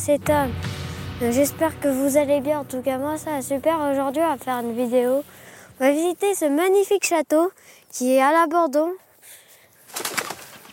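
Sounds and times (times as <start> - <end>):
speech: 0.0 - 9.0
pigeon taking off with wing flaps: 9.9 - 10.7.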